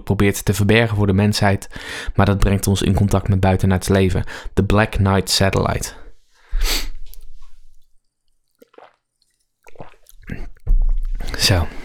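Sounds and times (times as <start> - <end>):
speech: 0.1 - 6.0, 11.4 - 11.8
junk food being crunched and chewed: 8.4 - 11.2.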